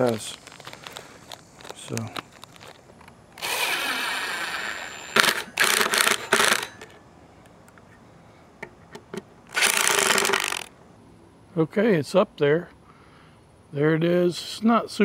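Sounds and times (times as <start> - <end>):
speech: 0.0 - 0.4, 1.9 - 2.2, 11.6 - 12.8, 13.7 - 15.0
zip ties from a new bag being ratcheted tight: 3.4 - 6.9, 9.5 - 10.7.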